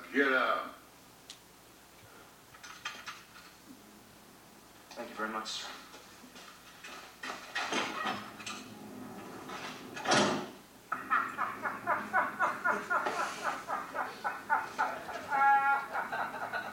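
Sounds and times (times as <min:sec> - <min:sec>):
speech: 0:00.1 - 0:00.8, 0:05.0 - 0:05.8
heavy door sliding open with a whoosh: 0:07.2 - 0:10.6
laughter: 0:10.9 - 0:16.7.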